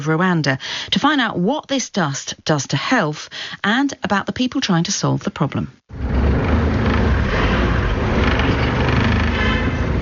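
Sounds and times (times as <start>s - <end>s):
speech: 0.0s - 6.4s
car driving on a road into a warm, dry district: 5.9s - 10.0s.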